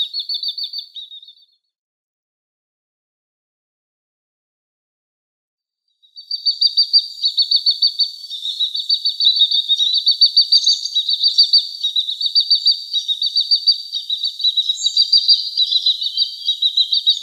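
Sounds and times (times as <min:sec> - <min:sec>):
downy Great Crested Grebe chicks peeping: 0:00.0 - 0:01.2, 0:06.2 - 0:17.2
speech: 0:06.6 - 0:07.7, 0:10.4 - 0:10.8, 0:13.5 - 0:14.0.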